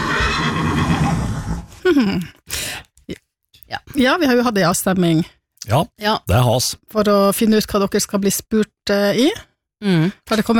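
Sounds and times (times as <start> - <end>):
horse whinnying: 0.0 - 1.7
speech: 2.0 - 2.6, 4.0 - 10.5.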